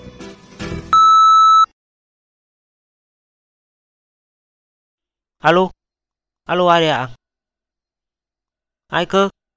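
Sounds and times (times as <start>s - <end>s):
answering machine beep: 0.9s - 1.7s
speech: 5.4s - 5.8s, 6.5s - 7.2s, 8.9s - 9.4s.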